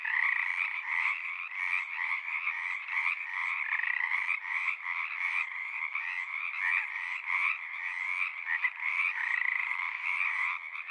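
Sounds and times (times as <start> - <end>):
chorus of Pacific tree frogs croaking at frog ponds in Seattle Washington USA: 0.0 - 10.8.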